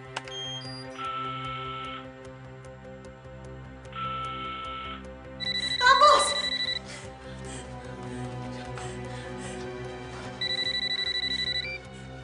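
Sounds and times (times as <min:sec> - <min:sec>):
low steady musical background: 0:00.0 - 0:12.2
landline telephone ringing with electronic trill: 0:05.4 - 0:06.8, 0:10.4 - 0:11.7.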